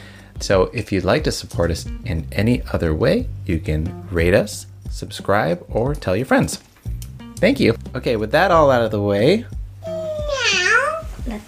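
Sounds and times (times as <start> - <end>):
speech: 0.4 - 6.7, 7.4 - 9.6
person imitating a cat meow: 9.8 - 11.1.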